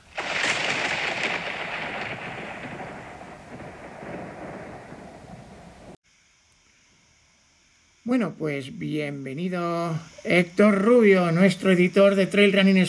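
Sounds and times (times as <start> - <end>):
thunderclap rolling into heavy rumble in a thunderstorm: 0.0 - 6.0
speech: 8.1 - 12.8.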